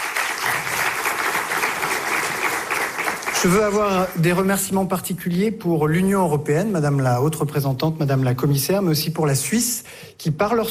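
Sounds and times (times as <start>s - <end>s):
applause from a sizable audience: 0.0s - 4.6s
speech: 3.4s - 10.6s.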